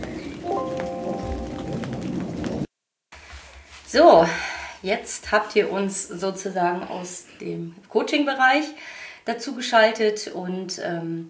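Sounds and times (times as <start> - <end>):
steady rain on a hard surface: 0.0 - 2.7
speech: 3.9 - 11.2.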